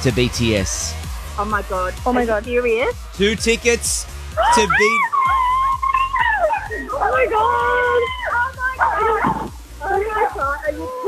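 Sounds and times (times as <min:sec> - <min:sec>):
speech: 0:00.0 - 0:05.2, 0:07.0 - 0:08.2
low steady background hum: 0:00.0 - 0:10.9
dog barking and yipping excitedly: 0:04.4 - 0:09.5
dog whimpering: 0:04.4 - 0:11.0.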